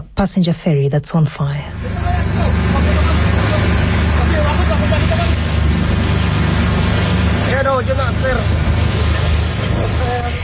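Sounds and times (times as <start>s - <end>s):
speech: 0.2s - 3.7s, 7.6s - 9.2s
rescue motorboat engine droning: 1.5s - 10.4s.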